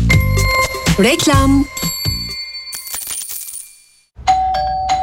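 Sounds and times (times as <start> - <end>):
metallic clinking jingle: 0.1 - 4.1
ding-dong doorbell ringing: 0.1 - 4.9
speech: 1.0 - 1.9.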